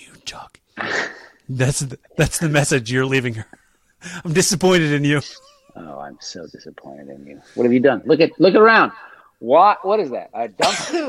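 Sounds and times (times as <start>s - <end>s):
speech: 0.3s - 11.0s
loud breathy sneeze: 0.8s - 1.3s.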